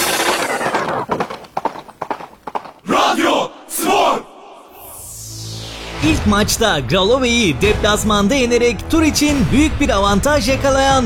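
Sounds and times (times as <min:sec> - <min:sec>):
galloping horse hooves at a horse race: 0:00.0 - 0:03.2
speech: 0:06.0 - 0:11.0.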